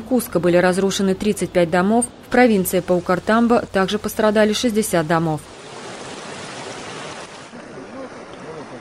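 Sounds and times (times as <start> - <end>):
speech: 0.1 - 5.6
rushing floodwater of the overflowing river after heavy rains in Peru: 2.5 - 8.7.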